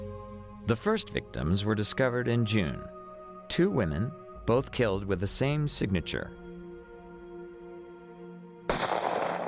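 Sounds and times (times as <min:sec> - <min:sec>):
speech: 0:00.7 - 0:06.4
loud gunshot: 0:08.7 - 0:09.4.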